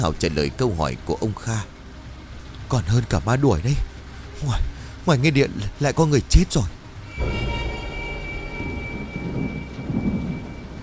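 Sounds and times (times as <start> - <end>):
speech: 0.0 - 1.7, 2.7 - 7.4
steady rain hissing in a heavy storm: 1.8 - 5.3, 6.7 - 10.8
thunder rumbling in a heavy storm: 7.1 - 10.8.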